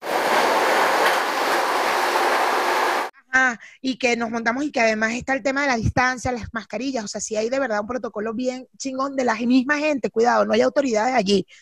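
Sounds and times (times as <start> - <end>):
New York subway train in motion, wheels and rails roaring: 0.0 - 3.1
speech: 3.5 - 11.5.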